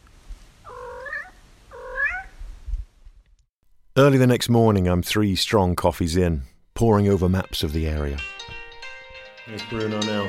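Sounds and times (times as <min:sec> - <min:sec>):
cat meowing: 0:00.7 - 0:02.4
speech: 0:04.0 - 0:08.6, 0:09.5 - 0:10.2.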